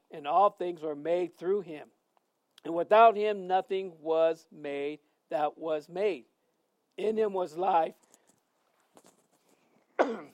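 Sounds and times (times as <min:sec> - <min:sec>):
speech: 0:00.2 - 0:02.0, 0:02.6 - 0:06.3, 0:07.0 - 0:08.0, 0:10.1 - 0:10.3
soft throat sounds: 0:09.8 - 0:10.3
harsh cough after a bee flew into the throat: 0:10.0 - 0:10.3.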